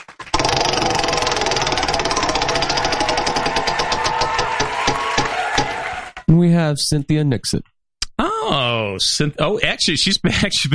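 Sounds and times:
prize wheel being spun, ratcheting clicks over a whir: 0.3 - 5.3
speech: 6.7 - 10.7.

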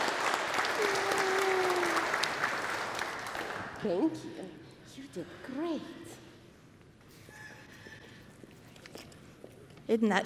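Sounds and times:
audience applauding for a baptized child: 0.0 - 3.8
speech: 3.8 - 6.2, 9.9 - 10.2.

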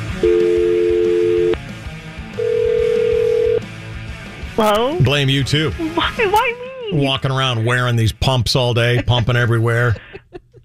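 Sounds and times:
telephone ringing tones while placing a call: 0.2 - 1.6, 2.4 - 3.6
speech: 4.6 - 10.1
laughter: 8.8 - 10.6.

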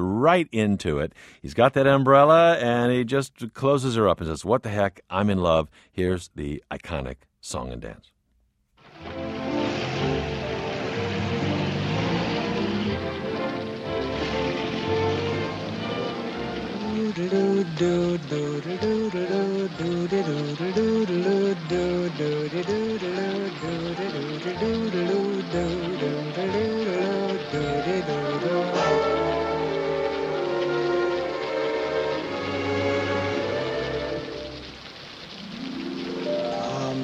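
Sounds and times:
speech: 0.0 - 8.1, 17.2 - 29.0
heavy rain pouring down: 8.8 - 37.0
lively orchestral music: 8.8 - 37.0.

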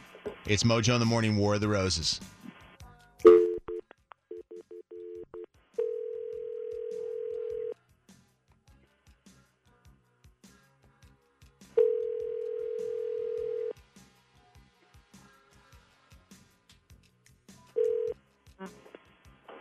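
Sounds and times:
speech: 0.5 - 2.3
phone-filtered telephone ring tones: 4.3 - 7.7, 11.8 - 13.7, 17.8 - 18.1
telephone tone bursts: 5.8 - 7.7, 11.8 - 13.7.

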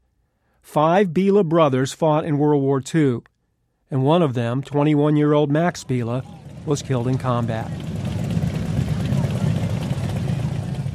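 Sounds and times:
speech: 0.6 - 3.3, 3.9 - 7.9
several motorcycle engines rumbling: 4.8 - 10.9.

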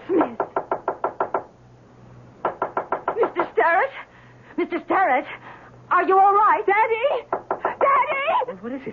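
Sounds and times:
knocking on a locked wooden study door: 0.1 - 1.5, 2.4 - 3.5, 7.3 - 8.0
speech: 4.6 - 7.4, 8.5 - 8.9.

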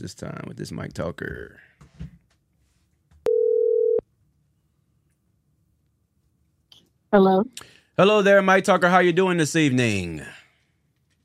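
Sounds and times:
speech: 0.0 - 2.1, 7.1 - 10.4
single loud steady telephone dialing tone: 3.2 - 4.0.

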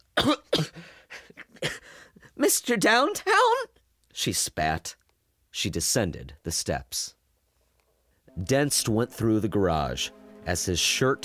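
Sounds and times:
woman coughing from the stench of fire: 0.1 - 1.9
speech: 2.5 - 5.0, 5.6 - 7.2, 8.4 - 11.2.

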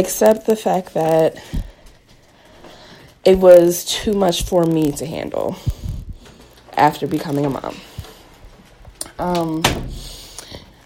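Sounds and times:
speech: 0.0 - 1.7, 3.2 - 5.8, 6.8 - 7.9, 9.2 - 10.0
door thudding shut as it latches: 9.6 - 10.2.

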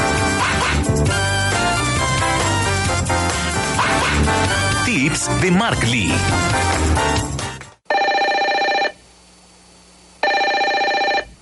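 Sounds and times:
music: 0.0 - 7.8
speech: 5.2 - 7.0
telephone ringing with an incoming call: 7.9 - 9.0, 10.2 - 11.4.

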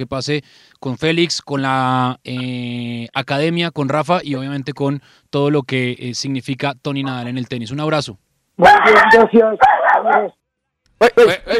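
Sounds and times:
speech: 0.0 - 10.4, 11.0 - 11.5
small dog yapping: 8.6 - 10.3.

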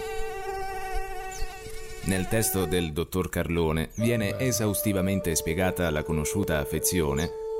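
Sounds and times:
fly buzzing: 0.0 - 2.9
speech: 2.0 - 7.4.

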